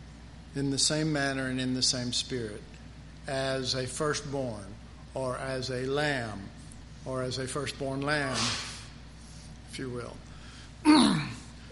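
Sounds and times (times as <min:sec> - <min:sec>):
speech: 0:00.5 - 0:08.7, 0:09.7 - 0:11.2
person sneezing: 0:10.8 - 0:11.6.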